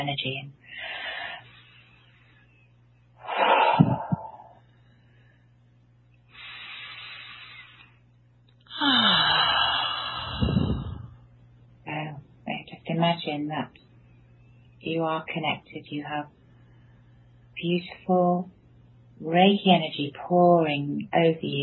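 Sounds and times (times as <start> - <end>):
speech: 0.0 - 0.9, 13.2 - 13.8, 14.8 - 16.4, 17.6 - 18.6, 19.2 - 21.6
slow deep breaths while seated in a Reiki relaxation exercise: 0.6 - 5.6, 6.3 - 8.0, 8.7 - 11.4, 16.5 - 17.5.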